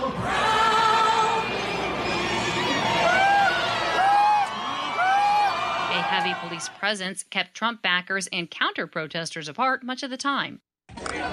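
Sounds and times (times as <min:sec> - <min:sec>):
large crowd of supporters cheering in Washington, D.C.: 0:00.0 - 0:07.0, 0:10.9 - 0:11.3
high whoops and shouts: 0:02.4 - 0:06.5
speech: 0:06.3 - 0:11.3.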